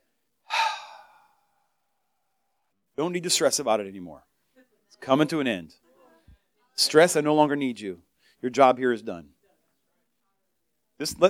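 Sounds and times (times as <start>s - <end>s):
deep breath: 0.4s - 1.8s
speech: 3.0s - 4.3s, 5.0s - 5.8s, 6.8s - 9.4s, 11.0s - 11.2s.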